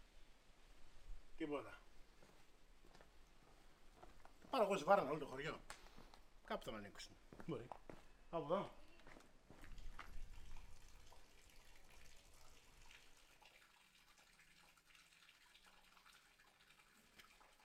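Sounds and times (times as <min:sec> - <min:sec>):
speech: 0:01.4 - 0:01.9, 0:04.5 - 0:05.8, 0:06.5 - 0:08.8
water pouring from the spout of an old village fountain: 0:09.5 - 0:17.6.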